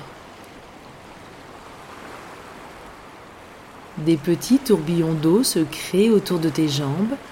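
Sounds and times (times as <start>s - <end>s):
gentle ocean waves lapping: 0.0s - 7.2s
speech: 4.0s - 7.2s.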